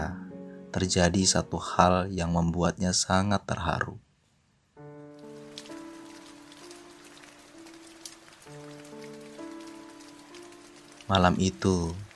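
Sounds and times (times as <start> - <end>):
speech: 0.7 - 4.1, 11.1 - 12.0
heavy rain pouring: 5.2 - 12.1.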